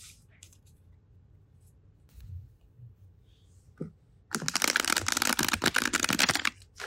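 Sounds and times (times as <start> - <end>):
deck of cards riffled: 4.3 - 6.6.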